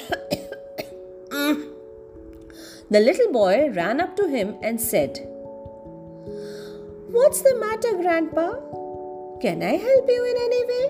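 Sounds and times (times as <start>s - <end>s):
man coughing from smoke: 0.0s - 1.6s
speech: 2.9s - 5.3s, 7.2s - 8.8s, 9.4s - 10.7s.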